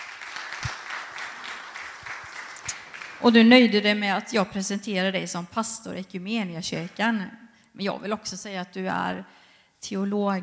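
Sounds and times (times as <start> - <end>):
audience applause: 0.0 - 3.6
speech: 3.2 - 10.4.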